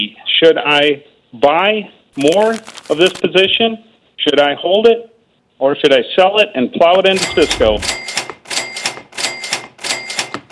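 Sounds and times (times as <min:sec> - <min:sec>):
speech: 0:00.0 - 0:08.0
cash register ringing with clattering mechanical bursts: 0:07.2 - 0:10.5.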